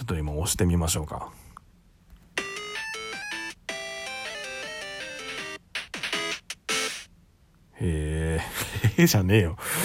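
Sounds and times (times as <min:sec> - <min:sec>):
speech: 0:00.1 - 0:01.5, 0:07.8 - 0:09.8
electronic game jingle of beeping synth tones: 0:02.4 - 0:07.1.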